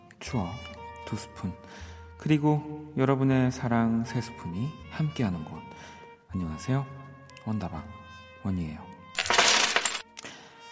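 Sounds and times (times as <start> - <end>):
speech: 0.2 - 8.9
metallic coins clinking as they spill out of a pocket: 9.2 - 10.1.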